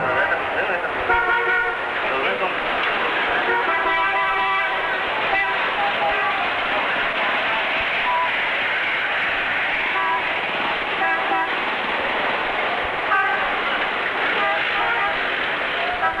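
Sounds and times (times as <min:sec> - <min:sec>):
dense roar of engines and tires on a city avenue in Guangzhou China: 0:00.0 - 0:16.1
car horn toots of varying pitch on a city avenue in Guangzhou China: 0:01.1 - 0:01.8, 0:03.4 - 0:06.6, 0:13.1 - 0:13.6, 0:14.3 - 0:16.1.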